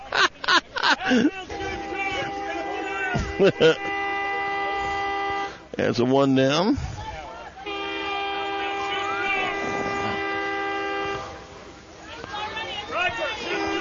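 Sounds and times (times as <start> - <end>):
laughter: 0.0 - 4.8
speech: 0.5 - 1.4, 3.4 - 3.9, 5.8 - 6.9
train whistle: 1.6 - 5.6, 7.7 - 11.4.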